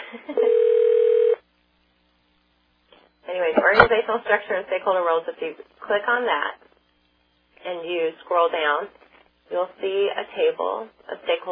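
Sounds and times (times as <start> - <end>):
speech: 0.1 - 0.8, 3.9 - 6.6, 7.6 - 11.5
telephone ringing with an electronic tone: 0.4 - 1.4.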